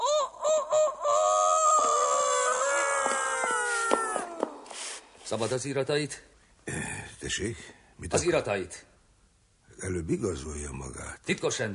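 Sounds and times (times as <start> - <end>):
person imitating a rooster crowing: 0.0 - 4.5
speech: 5.3 - 8.9, 9.8 - 11.7.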